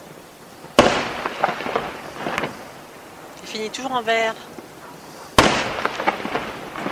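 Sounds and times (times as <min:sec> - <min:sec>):
firework bang outdoors: 0:00.7 - 0:02.8, 0:05.3 - 0:06.8
speech: 0:03.6 - 0:04.6.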